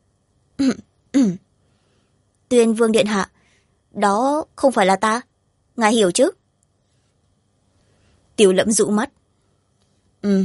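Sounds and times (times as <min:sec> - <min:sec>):
woman coughing dry throat-clearing coughs: 0:00.6 - 0:01.5
speech: 0:02.6 - 0:06.4, 0:08.4 - 0:09.2, 0:10.2 - 0:10.4.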